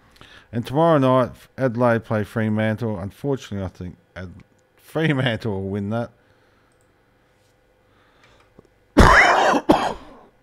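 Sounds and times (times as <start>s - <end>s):
speech: 0.5s - 6.2s
raspy throat clearing: 9.0s - 10.3s
cough: 9.0s - 10.4s.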